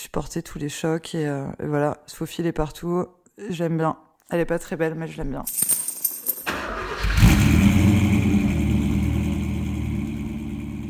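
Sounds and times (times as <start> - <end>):
speech: 0.1 - 5.8
small car engine cranking, catching and revving: 6.5 - 10.8.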